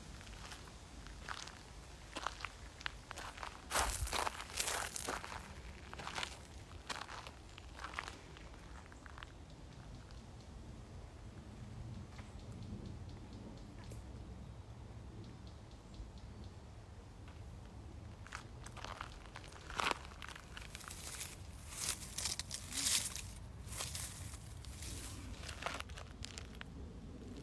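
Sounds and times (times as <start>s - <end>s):
steady low rumble of traffic: 0.0s - 27.4s
footsteps crunching over dry ground in a nature reserve: 0.2s - 9.4s, 18.2s - 27.4s.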